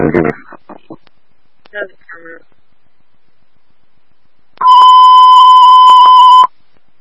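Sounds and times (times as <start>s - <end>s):
speech: 0.1s - 0.4s
loud high-pitched electronic alarm tone: 4.6s - 6.5s.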